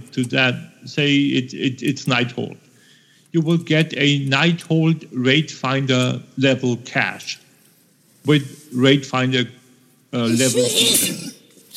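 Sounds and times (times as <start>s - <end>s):
speech: 0.2s - 2.7s, 3.3s - 7.4s, 8.2s - 11.1s
person sneezing: 10.3s - 11.4s.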